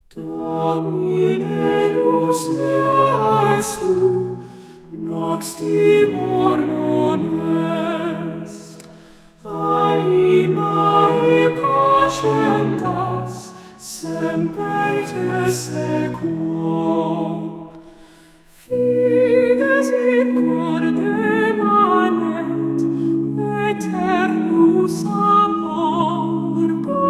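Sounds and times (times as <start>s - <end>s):
woman singing Gregorian chant: 0.1s - 4.2s, 5.0s - 8.7s, 9.5s - 17.4s, 18.7s - 27.0s.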